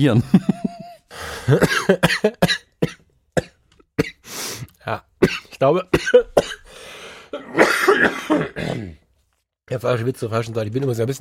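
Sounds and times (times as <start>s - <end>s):
speech: 0.0s - 0.5s, 1.1s - 2.9s, 5.6s - 6.6s, 9.7s - 11.1s
laughter: 0.1s - 1.1s
person coughing: 1.4s - 4.2s, 5.2s - 6.7s, 7.3s - 9.0s.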